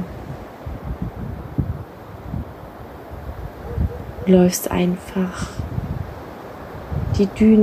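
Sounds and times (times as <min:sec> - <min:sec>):
ocean waves rushing: 0:00.0 - 0:07.6
speech: 0:04.3 - 0:05.6, 0:07.2 - 0:07.6.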